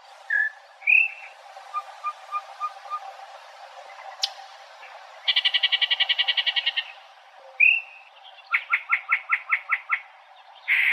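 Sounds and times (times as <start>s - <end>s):
faint hiss: 0.0s - 10.9s
varied song of a single bird with whistles, buzzy rattles and trills: 0.3s - 3.1s, 5.2s - 10.9s.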